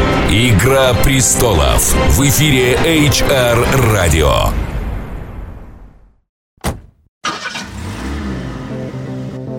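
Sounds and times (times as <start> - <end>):
speech: 0.3 - 4.7
car starter whir: 7.2 - 8.2
car engine revving: 7.2 - 9.5.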